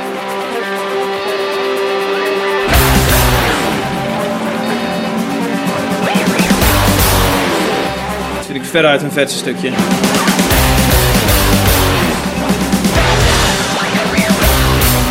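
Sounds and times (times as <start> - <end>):
heavy full band with pounding low drums and distorted guitars: 0.1 - 8.5, 9.5 - 15.0
sustained synth-like intro: 0.9 - 8.5, 9.7 - 15.0
speech: 8.7 - 10.3.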